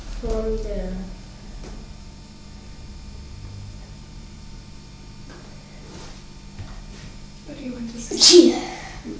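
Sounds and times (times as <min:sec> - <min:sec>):
speech: 0:00.2 - 0:01.9, 0:08.0 - 0:08.7
single sharp sneeze: 0:08.1 - 0:09.1.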